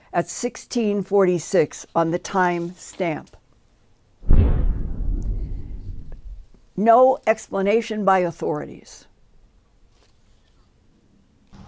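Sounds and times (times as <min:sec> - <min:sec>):
speech: 0:00.1 - 0:03.4, 0:06.8 - 0:09.1
loud deep unexplained boom recorded by a security camera in McMinnville, Oregon: 0:04.2 - 0:06.5.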